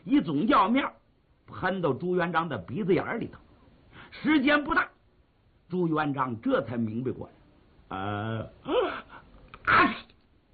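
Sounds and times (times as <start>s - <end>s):
speech: 0.1s - 3.4s, 4.1s - 5.0s, 5.7s - 9.0s, 9.7s - 10.0s
voice imitating a sneeze: 8.1s - 10.2s.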